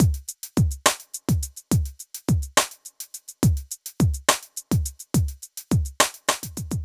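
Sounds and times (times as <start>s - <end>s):
drums playing triplets at 140: 0.0s - 6.8s.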